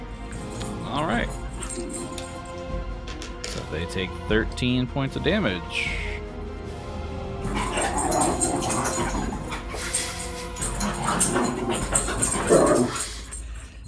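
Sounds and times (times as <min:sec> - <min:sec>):
wolves snarling and fighting: 0:00.3 - 0:02.5, 0:07.3 - 0:13.8
speech: 0:03.7 - 0:06.1.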